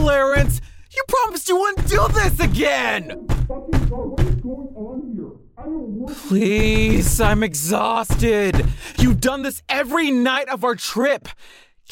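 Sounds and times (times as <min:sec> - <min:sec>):
heavy knocks on a wooden hotel room door: 0:00.1 - 0:00.7, 0:01.8 - 0:04.5, 0:06.6 - 0:09.3
speech: 0:00.1 - 0:04.2, 0:06.0 - 0:11.8.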